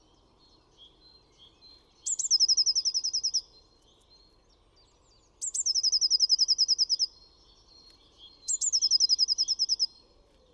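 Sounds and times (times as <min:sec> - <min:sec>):
blue tit song with rapid high even trills: 0:00.0 - 0:10.0.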